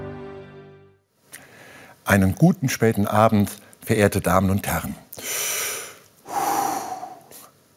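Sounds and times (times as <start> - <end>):
person breathing in and out: 1.3 - 2.0, 5.1 - 7.5
speech: 2.1 - 5.5.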